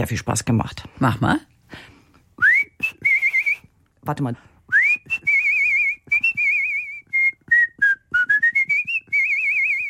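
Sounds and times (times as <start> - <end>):
speech: 0.0 - 1.9, 4.0 - 4.5
woman whistling a birdlike tune imitating a small songbird: 2.4 - 3.7, 4.7 - 9.8.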